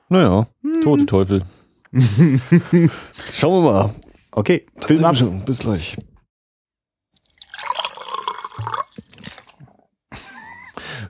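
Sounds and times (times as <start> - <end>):
speech: 0.1 - 6.1
laughter: 2.0 - 3.1
blood dripping and gurgling into a small glass light bulb: 7.2 - 9.6.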